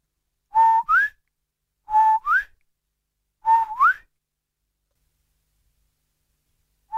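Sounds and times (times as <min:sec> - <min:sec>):
man whistling a two-note call while walking along the water: 0:00.5 - 0:01.2, 0:01.9 - 0:02.6, 0:03.4 - 0:04.1.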